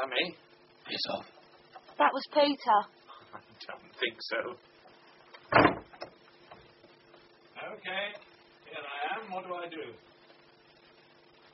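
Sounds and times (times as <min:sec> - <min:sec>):
speech: 0:00.0 - 0:01.4, 0:02.0 - 0:04.7, 0:05.5 - 0:05.7, 0:07.7 - 0:10.1
door shutting with a dull thud: 0:05.4 - 0:06.2.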